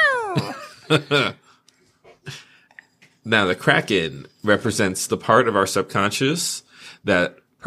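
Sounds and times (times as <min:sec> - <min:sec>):
hungry cat meowing: 0:00.0 - 0:00.5
speech: 0:00.4 - 0:01.4, 0:02.3 - 0:02.5, 0:03.2 - 0:07.6.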